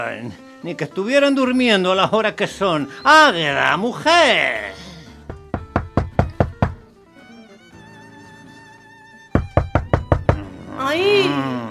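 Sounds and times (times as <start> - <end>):
speech: 0.0 - 4.7
soft music: 0.0 - 11.6
father knocking forcefully on the door of his house: 5.3 - 6.9, 9.4 - 10.5.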